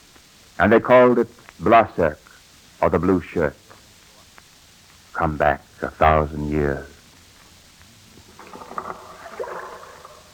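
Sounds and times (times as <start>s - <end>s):
speech: 0.6s - 2.2s, 2.8s - 3.6s, 5.2s - 7.0s
rowing-boat oars creaking and knocking in oarlocks on a Greenland fjord: 8.2s - 10.3s
water swishing on a deep steep-walled fjord in Greenland: 8.2s - 10.3s.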